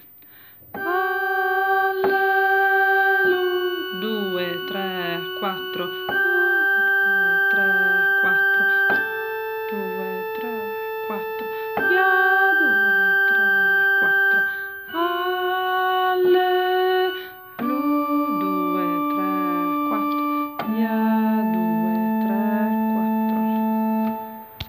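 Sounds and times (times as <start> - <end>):
bass voices singing a choral piece finale: 0.8 - 24.4.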